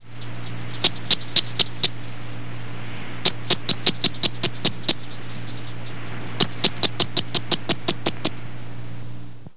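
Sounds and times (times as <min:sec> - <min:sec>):
cricket frog calling: 0:00.0 - 0:02.2, 0:03.2 - 0:08.4.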